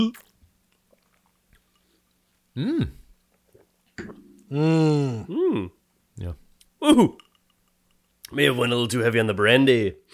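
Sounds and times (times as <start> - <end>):
speech: 0.0 - 0.2, 2.6 - 3.0, 4.0 - 7.2, 8.3 - 10.1
person chewing soft raspberry chunks from sangria: 0.1 - 4.5.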